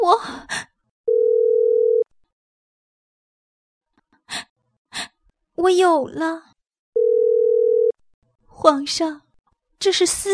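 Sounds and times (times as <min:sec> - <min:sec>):
speech: 0:00.1 - 0:00.6, 0:05.6 - 0:06.5, 0:08.6 - 0:09.2, 0:09.8 - 0:10.3
single steady electronic telephone tone: 0:01.1 - 0:02.0, 0:07.0 - 0:07.9.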